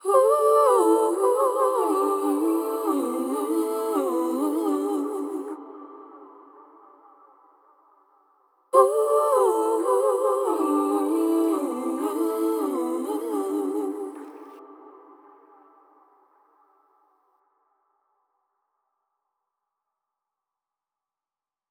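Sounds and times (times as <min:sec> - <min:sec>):
wet soul vocal ad lib at 110 BPM in C major: 0:00.0 - 0:17.1.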